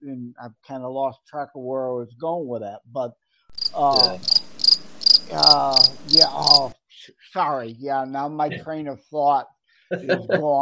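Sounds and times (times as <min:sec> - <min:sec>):
laughter: 0:00.0 - 0:03.1, 0:03.8 - 0:04.2, 0:05.3 - 0:10.6
speech: 0:00.0 - 0:04.4, 0:05.3 - 0:10.6
crickets chirping sound effect: 0:03.6 - 0:06.7.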